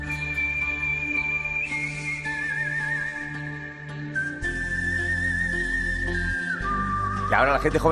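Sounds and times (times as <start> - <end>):
full instrumental backing music: 0.0 - 7.9
person whistling a Western-film melody with vibrato: 0.0 - 7.9
speech: 7.3 - 7.9.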